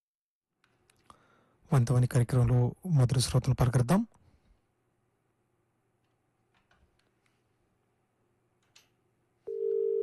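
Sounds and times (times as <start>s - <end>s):
speech: 1.7s - 4.2s
steady telephone tone after a caller's line disconnects: 9.5s - 10.0s.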